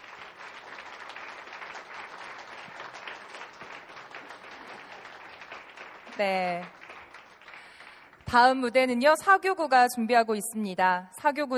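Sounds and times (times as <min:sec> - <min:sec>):
sizable crowd applauding after a performance: 0:00.0 - 0:08.4
speech: 0:06.2 - 0:06.8, 0:08.3 - 0:11.5.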